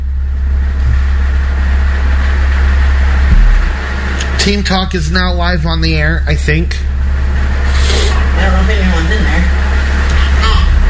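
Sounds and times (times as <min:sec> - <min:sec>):
car engine idling: 0:00.0 - 0:10.8
speech: 0:04.4 - 0:06.9.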